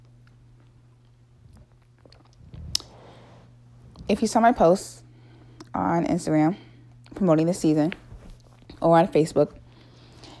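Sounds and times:
person sipping a drink: 0:01.5 - 0:03.3
speech: 0:04.1 - 0:05.0, 0:05.8 - 0:08.0, 0:08.8 - 0:09.6.

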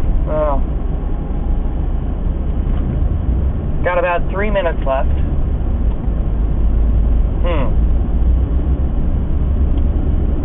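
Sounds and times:
car driving in slow highway traffic near Fife, Washington: 0:00.0 - 0:10.4
speech: 0:04.2 - 0:05.2.

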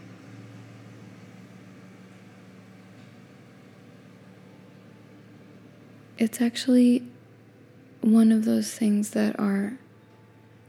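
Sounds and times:
truck engine idling: 0:00.0 - 0:06.2
speech: 0:06.2 - 0:07.1, 0:08.0 - 0:09.8.

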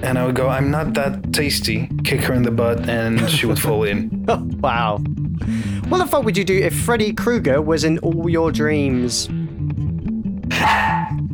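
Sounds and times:
speech: 0:00.0 - 0:09.4
person imitating dog barks: 0:10.5 - 0:11.2.

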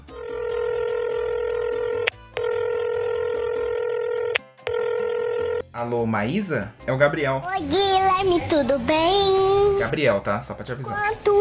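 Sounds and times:
telephone ringback tone on an outgoing call: 0:00.1 - 0:05.6
speech: 0:05.8 - 0:11.3.

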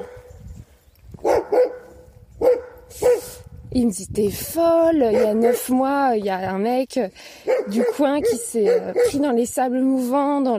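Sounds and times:
dog barking: 0:01.2 - 0:03.4, 0:05.1 - 0:05.7, 0:07.5 - 0:09.2
speech: 0:03.8 - 0:10.5.

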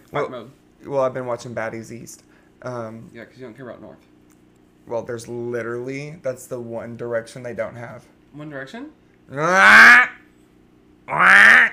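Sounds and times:
speech: 0:00.1 - 0:04.1, 0:04.8 - 0:10.1
duck quacking: 0:09.4 - 0:10.2, 0:11.1 - 0:11.7.

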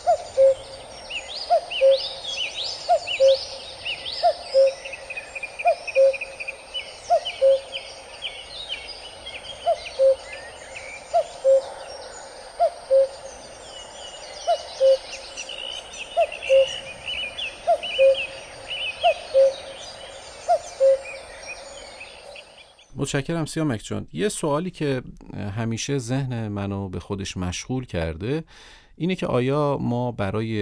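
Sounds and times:
cuckoo calling two-note cu-coo: 0:00.0 - 0:22.8
songbirds chattering softly: 0:00.0 - 0:23.0
speech: 0:23.1 - 0:30.5.

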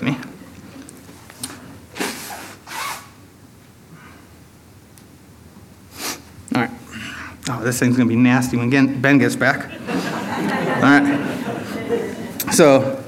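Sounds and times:
speech: 0:00.0 - 0:00.3, 0:07.6 - 0:09.7, 0:10.8 - 0:11.3, 0:12.6 - 0:13.0
person blowing their nose: 0:02.0 - 0:03.2, 0:05.9 - 0:06.3
laughter: 0:09.4 - 0:13.0.

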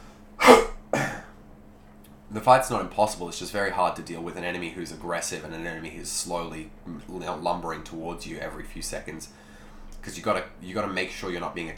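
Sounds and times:
person clearing throat: 0:00.4 - 0:01.3
speech: 0:02.3 - 0:09.4, 0:10.0 - 0:11.7.

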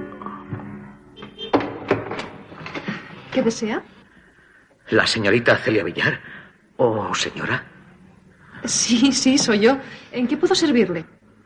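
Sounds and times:
door being unlatched and opened: 0:01.5 - 0:02.9
speech: 0:03.4 - 0:04.0, 0:04.9 - 0:07.7, 0:08.6 - 0:11.2.

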